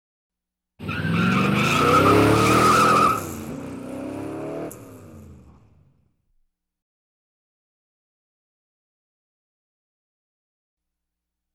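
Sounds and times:
squeaky car brakes: 0.8 - 3.7
car engine revving: 0.8 - 6.0.

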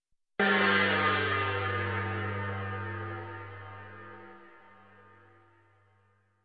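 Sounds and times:
weird gong hit: 0.4 - 5.3.

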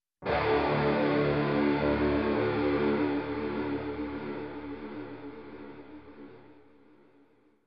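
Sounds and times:
dark 80s rock guitar strum stinger: 0.2 - 5.8.

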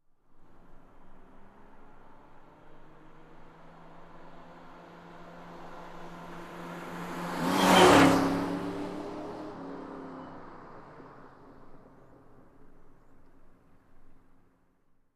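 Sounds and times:
car driving by fast: 0.4 - 12.6.

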